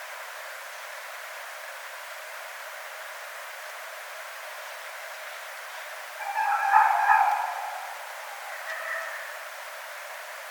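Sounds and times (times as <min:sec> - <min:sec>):
red fox calling at night: 0:06.2 - 0:09.6.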